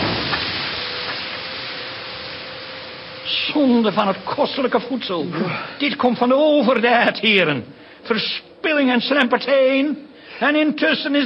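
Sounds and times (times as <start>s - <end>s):
steam hissing as soup from a tureen is dumped onto a fire: 0.0s - 6.5s
speech: 3.3s - 11.2s.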